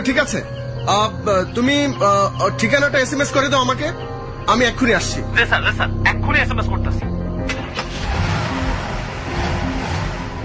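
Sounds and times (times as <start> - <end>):
speech: 0.0 - 7.1
police officer's car driving off at speed with engine roaring: 5.2 - 10.4.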